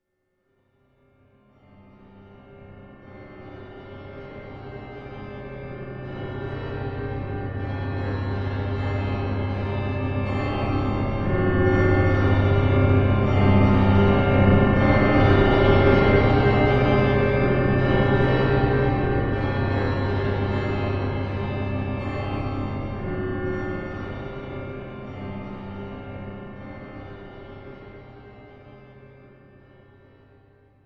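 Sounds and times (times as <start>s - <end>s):
eerie church music with chimes: 5.4s - 27.2s.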